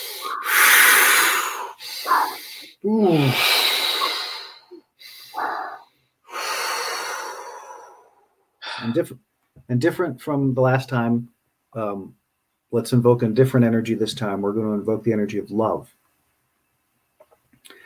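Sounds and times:
quick breaths in through nose and out through mouth in a breathing exercise: 0.0s - 8.9s
speech: 2.9s - 3.7s, 9.0s - 16.0s.

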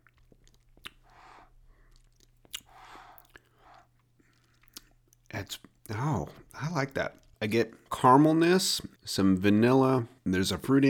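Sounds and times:
lip smacks and mouth clicks while tasting an oak-aged grape-based spirit: 0.0s - 7.8s
soft breaths while tasting a grape-based spirit: 1.0s - 5.0s
speech: 5.4s - 10.8s.

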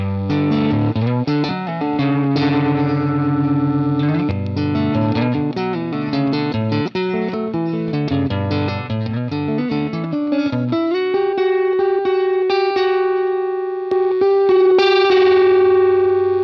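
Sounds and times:
mildly overdriven electric guitar with reverb strumming minor-second chords: 0.0s - 16.4s.

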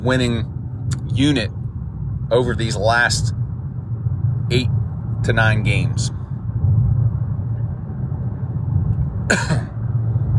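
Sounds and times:
speech: 0.0s - 1.6s, 2.3s - 3.4s, 4.5s - 6.2s, 9.3s - 9.6s
steady low engine-like rumble: 0.0s - 10.3s
single sharp cough: 9.2s - 9.8s.

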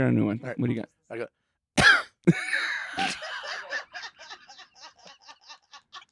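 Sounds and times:
speech: 0.0s - 1.4s, 2.2s - 3.2s
person clearing throat: 1.8s - 2.4s
laughter: 2.3s - 6.0s.

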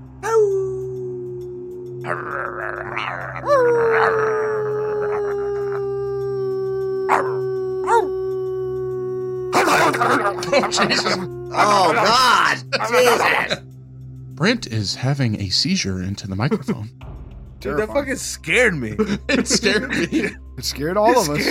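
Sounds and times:
vocal imitation of wolf howls: 0.2s - 13.6s
speech: 2.0s - 4.3s, 9.9s - 13.7s, 14.4s - 21.5s
laughter: 9.6s - 13.6s, 18.9s - 20.4s, 21.1s - 21.5s.

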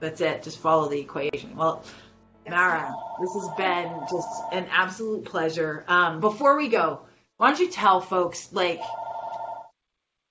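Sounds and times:
speech: 0.0s - 9.0s
electronic telephone ringing: 2.6s - 4.8s, 8.8s - 9.7s.

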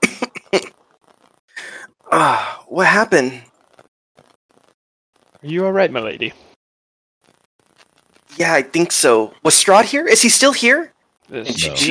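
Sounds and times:
person coughing raspily: 0.0s - 0.7s
speech: 0.5s - 0.8s, 2.1s - 3.5s, 5.4s - 6.5s, 8.4s - 11.8s.

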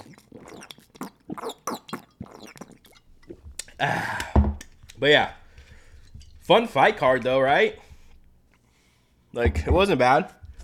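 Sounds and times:
mouth clicks: 0.0s - 5.0s
person drinking water: 0.0s - 6.4s
speech: 3.8s - 4.2s, 5.0s - 5.4s, 6.5s - 7.8s, 9.3s - 10.4s.

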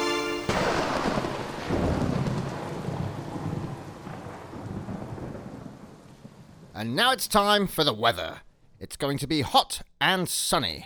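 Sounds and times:
loud crack of thunder: 0.0s - 6.8s
steady heavy rain: 0.0s - 6.8s
speech: 6.8s - 10.8s.

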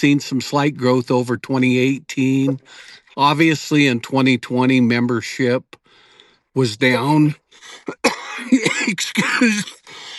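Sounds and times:
speech: 0.0s - 5.8s, 6.6s - 10.0s
person coughing: 7.8s - 10.1s
throat clearing: 7.8s - 10.1s.

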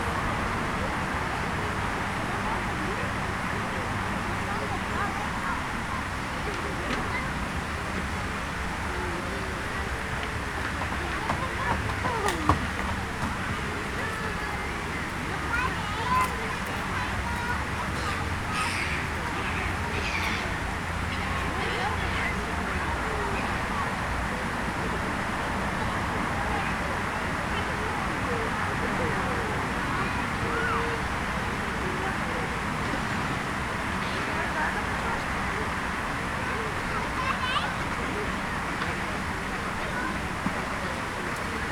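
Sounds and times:
children playing in a city centre park in the evening: 0.0s - 41.7s
constant low rumble of traffic: 0.0s - 41.7s
children's shouts and calls: 11.0s - 23.9s, 26.4s - 31.2s, 36.4s - 38.2s.

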